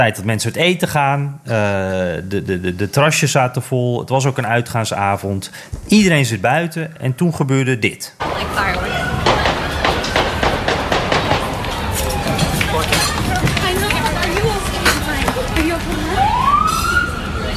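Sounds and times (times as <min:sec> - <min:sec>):
speech: 0:00.0 - 0:08.6
siren wailing: 0:08.2 - 0:10.1, 0:11.2 - 0:13.6, 0:16.0 - 0:17.5
noisy outdoor crowd fleeing: 0:08.2 - 0:17.5
gunshots: 0:09.2 - 0:13.1.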